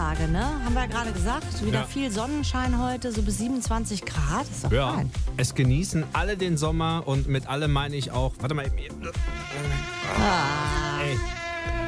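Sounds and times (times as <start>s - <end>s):
speech: 0.2s - 11.4s
mosquitoes and horseflies buzzing at an open window on a hot summer day: 9.0s - 11.8s.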